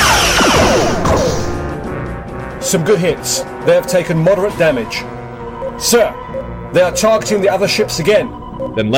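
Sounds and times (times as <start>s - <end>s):
sci-fi spaceship weapons firing in a space battle: 0.0s - 1.6s
speech: 2.7s - 5.2s, 5.8s - 8.9s.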